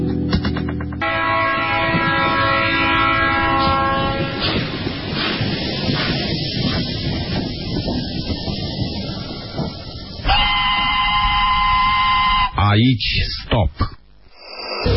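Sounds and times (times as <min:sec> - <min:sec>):
train rolling past on rails with rumbling wheels: 0:00.6 - 0:12.6
sustained horn-like tones: 0:01.0 - 0:04.7, 0:10.3 - 0:12.6
speech: 0:12.8 - 0:14.0.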